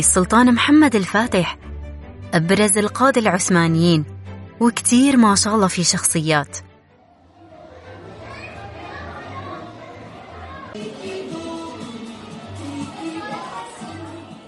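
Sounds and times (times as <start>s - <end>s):
speech: 0.0s - 1.7s, 2.3s - 6.7s
children playing in an indoor exhibition hall: 7.0s - 14.4s
crowd of children and parents chattering in an exhibition hall: 7.0s - 14.4s.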